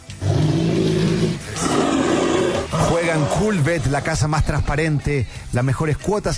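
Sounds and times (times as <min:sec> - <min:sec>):
bear roaring: 0:00.1 - 0:04.3
speech: 0:03.2 - 0:06.3.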